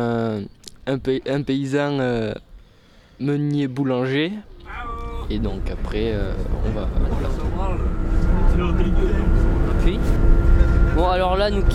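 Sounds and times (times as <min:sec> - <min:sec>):
speech: 0:00.0 - 0:02.5, 0:03.2 - 0:10.4, 0:11.0 - 0:11.7
road noise inside a moving bus: 0:04.5 - 0:11.7
low bus engine rumble: 0:04.6 - 0:11.7
passengers chattering in a bus: 0:04.6 - 0:11.7.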